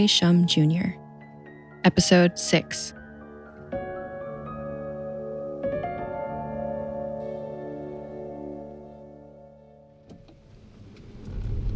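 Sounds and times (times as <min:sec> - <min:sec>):
speech: 0:00.0 - 0:01.0, 0:01.8 - 0:03.0
self-driving car with smooth electric hum pulling away: 0:10.2 - 0:11.7
low rumble: 0:10.9 - 0:11.7.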